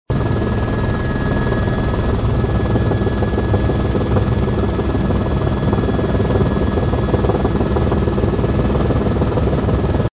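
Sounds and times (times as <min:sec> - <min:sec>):
helicopter: 0:00.1 - 0:10.1.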